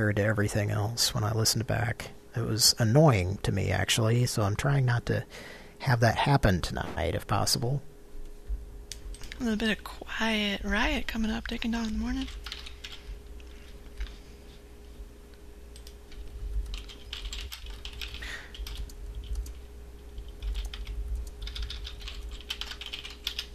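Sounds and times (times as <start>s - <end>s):
speech: 0.0s - 7.9s, 9.4s - 12.6s
steady low hum: 0.0s - 23.5s
typing on a computer keyboard during a chat: 11.4s - 13.0s, 15.8s - 19.6s, 20.2s - 23.5s.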